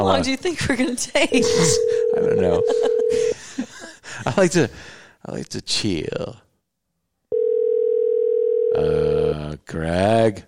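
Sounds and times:
speech: 0.0s - 3.4s, 4.2s - 6.4s, 8.8s - 10.4s
phone call ringing tone: 1.4s - 3.4s, 7.3s - 9.3s.

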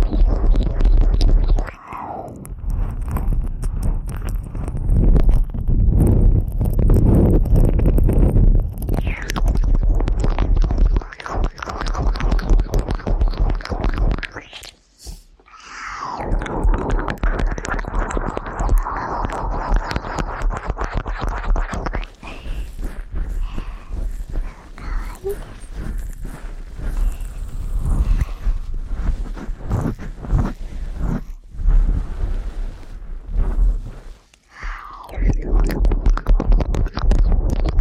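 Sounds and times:
crackling scratches: 0.0s - 15.2s, 15.8s - 37.7s
dense wet mouth sounds: 0.0s - 37.7s.

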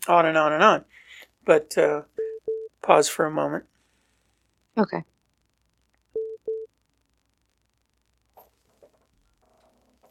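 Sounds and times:
speech: 0.0s - 2.2s, 2.8s - 3.7s, 4.8s - 5.1s
electronic phone-call alert beeps: 2.2s - 2.7s, 6.2s - 6.7s.

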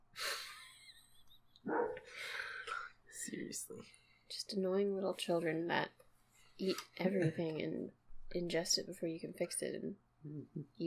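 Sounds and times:
dog barking: 1.7s - 2.1s
speech: 3.3s - 6.0s, 6.6s - 10.8s.

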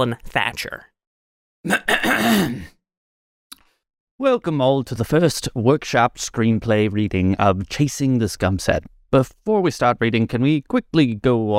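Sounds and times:
speech: 0.0s - 0.9s, 1.6s - 2.8s, 4.2s - 11.5s
man clearing his throat for attention at a gathering: 1.7s - 2.8s.

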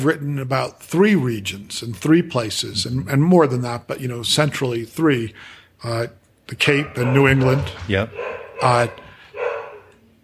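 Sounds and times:
speech: 0.0s - 9.0s
dog barking: 6.7s - 10.0s.

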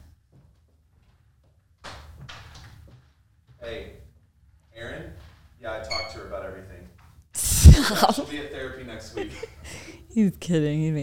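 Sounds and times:
speech: 3.7s - 4.0s, 7.9s - 9.6s, 10.2s - 11.0s
door being closed with clattering swing and firmer shut: 5.2s - 6.4s
laughter: 7.6s - 10.0s.

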